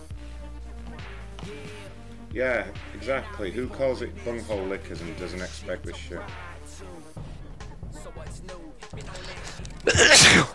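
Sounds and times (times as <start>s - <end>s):
speech: 2.3s - 6.5s
person sneezing: 9.9s - 10.5s.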